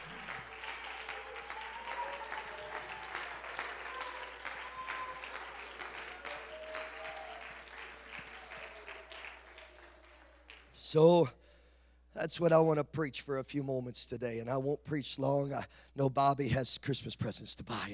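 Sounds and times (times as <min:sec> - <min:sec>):
audience clapping hands: 0:00.0 - 0:10.8
speech: 0:10.9 - 0:11.4, 0:12.2 - 0:17.9.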